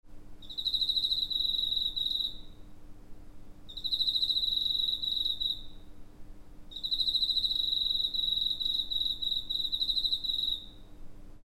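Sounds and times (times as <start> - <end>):
steady low hum: 0.1 - 11.4
cricket trilling: 0.4 - 2.6, 3.7 - 5.8, 6.7 - 10.9.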